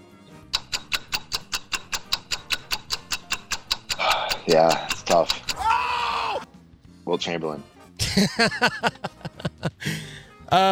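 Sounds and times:
ticking clock counting down: 0.5s - 6.5s
speech: 4.4s - 5.7s, 7.1s - 9.4s, 10.5s - 10.7s
laughter: 8.0s - 10.0s.

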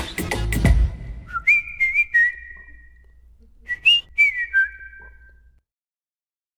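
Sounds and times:
person whistling a bright catchy melody: 1.2s - 3.0s, 3.6s - 5.5s.

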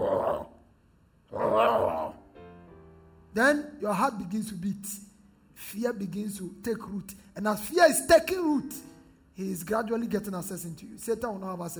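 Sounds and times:
lion roaring: 0.0s - 0.6s, 1.3s - 2.2s
speech: 3.4s - 11.7s.

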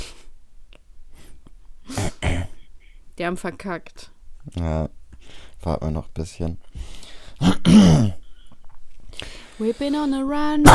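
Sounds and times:
person coughing into arm: 1.9s - 2.6s, 7.4s - 8.2s
speech: 3.2s - 8.2s, 9.6s - 10.7s.

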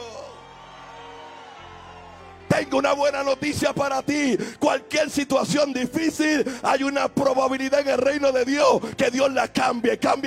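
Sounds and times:
church audience shouting and whooping: 0.0s - 5.0s
speech: 2.6s - 10.2s.

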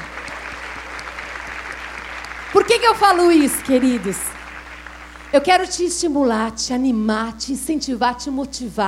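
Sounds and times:
audience applauding: 0.0s - 5.7s
speech: 2.5s - 4.3s, 5.3s - 8.8s.

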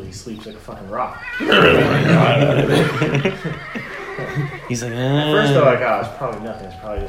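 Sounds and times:
speech: 0.1s - 7.0s
person imitating a horse's whinny: 1.1s - 5.7s
laughter: 1.4s - 7.0s.

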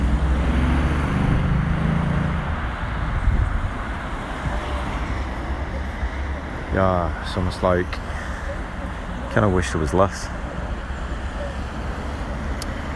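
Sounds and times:
steady traffic rumble from cars on a nearby road: 0.0s - 12.9s
wind noise: 2.3s - 5.1s
speech: 6.8s - 8.2s, 9.3s - 10.4s.

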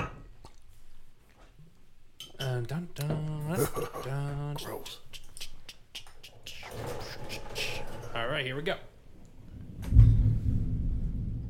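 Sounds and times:
speech: 2.6s - 5.1s, 8.2s - 8.9s
distant thunder rumbling: 9.6s - 11.4s.

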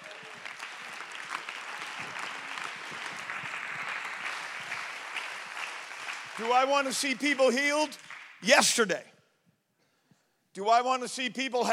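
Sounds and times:
audience clapping hands in praise: 0.0s - 8.4s
speech: 6.4s - 9.1s, 10.6s - 11.7s.

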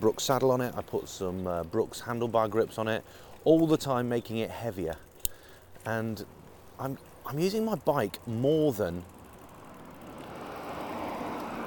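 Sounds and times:
speech: 0.0s - 5.1s, 5.8s - 9.2s
car driving past with road and engine noise: 9.8s - 11.6s.

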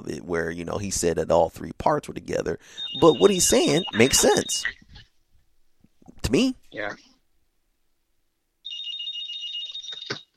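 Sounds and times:
speech: 0.0s - 4.8s, 6.2s - 7.1s
landline home phone ringing with a steady electronic trill: 2.7s - 4.7s, 8.6s - 10.3s.

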